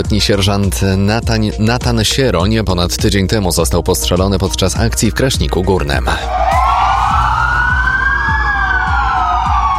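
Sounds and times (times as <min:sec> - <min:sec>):
speech: 0:00.0 - 0:06.6
police siren wailing in Poland as a tribute to a killed officer: 0:06.2 - 0:09.7.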